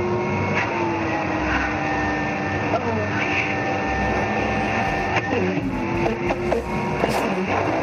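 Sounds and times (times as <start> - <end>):
vacuum cleaner running with suction: 0.0 - 7.8.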